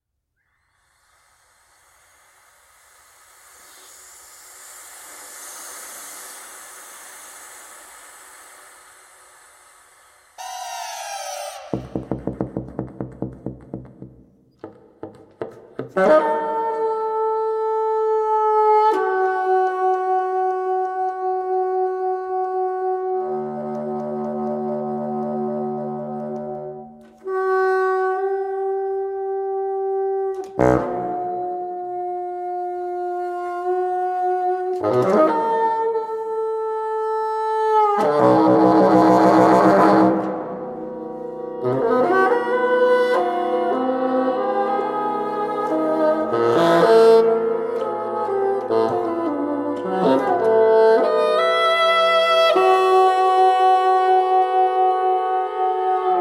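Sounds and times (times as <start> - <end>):
solo bassoon: 15.7 - 56.1.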